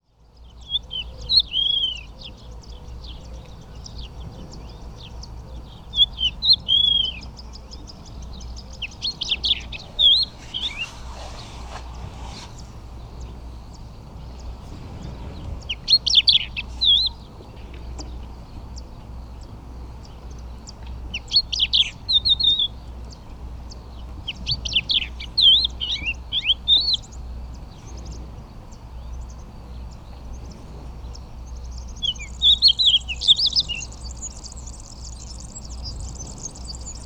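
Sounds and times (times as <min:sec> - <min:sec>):
crested lark Galerida cristata singing: 0:00.5 - 0:14.6, 0:15.4 - 0:37.0.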